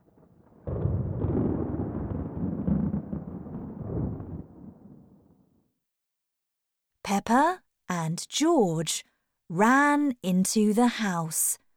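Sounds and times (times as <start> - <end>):
thunder rumbling: 0.0 - 5.6
speech: 7.1 - 11.6.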